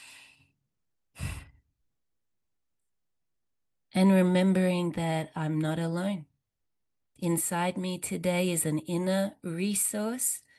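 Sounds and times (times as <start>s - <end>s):
slow deep breathing in and out: 1.2s - 1.6s
speech: 3.9s - 6.3s, 7.2s - 10.4s.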